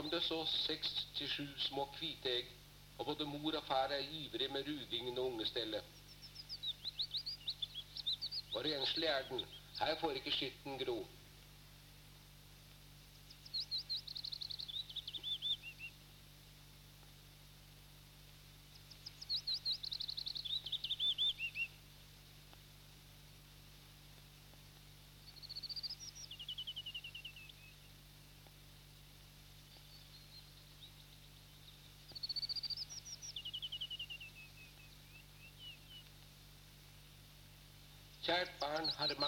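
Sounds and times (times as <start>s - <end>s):
speech: 0.0s - 6.0s, 8.5s - 11.2s, 38.3s - 39.2s
steady low hum: 0.0s - 39.2s
bluethroat singing high varied trills and chirps: 3.9s - 11.0s, 13.2s - 16.0s, 18.7s - 21.8s, 25.2s - 28.0s, 29.6s - 36.1s, 37.9s - 39.2s.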